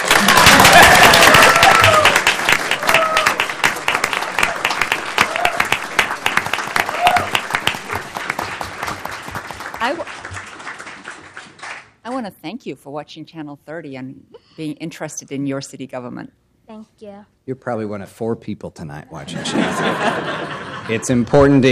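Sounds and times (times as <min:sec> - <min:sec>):
crowd applauding at a city government meeting: 0:00.0 - 0:12.0
speech: 0:12.5 - 0:21.7
laughter: 0:19.2 - 0:21.6.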